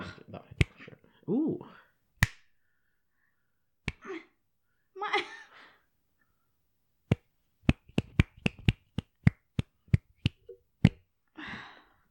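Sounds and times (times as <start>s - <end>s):
speech: 1.3s - 1.8s
finger snaps: 2.2s - 2.5s, 3.9s - 4.1s, 7.1s - 11.0s.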